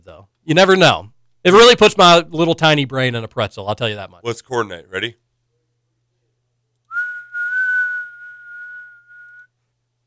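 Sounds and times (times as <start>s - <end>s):
speech: 0.0s - 5.2s
person whistling one long steady high note: 6.9s - 9.5s.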